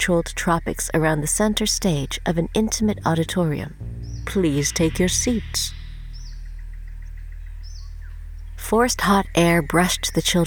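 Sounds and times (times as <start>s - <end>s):
speech: 0.0s - 5.8s, 8.6s - 10.4s
insect chirps from hidden speakers in a tropical exhibit: 0.0s - 10.4s
low hum: 0.0s - 10.4s
high sweeping bird whistles from hidden speakers in a tropical exhibit: 4.1s - 8.3s.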